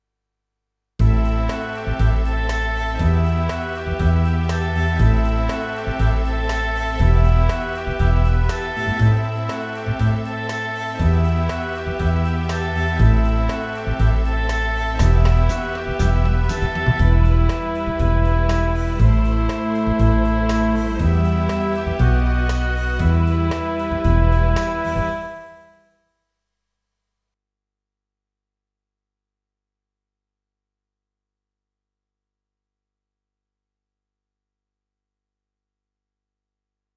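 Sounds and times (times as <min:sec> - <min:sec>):
oboe playing rock ballad riff in E minor: 0:01.0 - 0:25.6.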